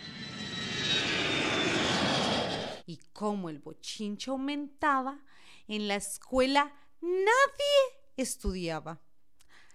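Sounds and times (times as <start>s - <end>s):
propeller airplane engine droning overhead: 0.0s - 2.8s
speech: 2.9s - 9.1s.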